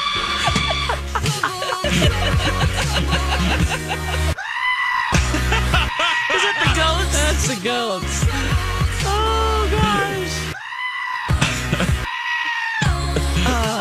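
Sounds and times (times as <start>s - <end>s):
goats bleating: 0.0s - 1.1s, 4.4s - 5.2s, 5.8s - 7.3s, 9.6s - 13.0s
steady musical backing: 0.0s - 4.4s, 5.1s - 10.6s, 11.3s - 12.1s, 12.8s - 13.7s
laughter: 0.2s - 7.5s, 11.4s - 12.1s, 13.0s - 13.7s.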